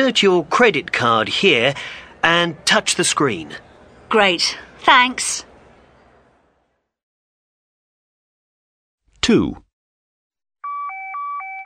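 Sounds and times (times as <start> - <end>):
speech: 0.0 - 5.5, 9.3 - 9.6
mobile phone low battery warning beeps: 10.6 - 11.6.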